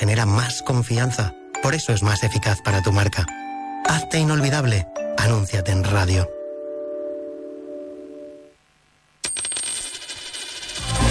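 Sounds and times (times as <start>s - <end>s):
speech: 0.0s - 6.4s
one-euro coin dropping and rattling: 9.2s - 11.0s.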